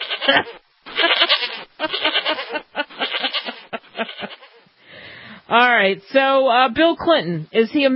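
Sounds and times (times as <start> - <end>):
goat bleating: 0.0 - 4.7
speech: 0.3 - 2.4, 5.5 - 7.9.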